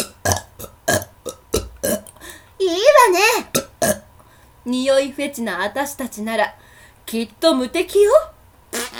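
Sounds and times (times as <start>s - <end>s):
short throaty burps: 0.0s - 2.2s, 3.5s - 4.1s
speech: 4.7s - 8.3s.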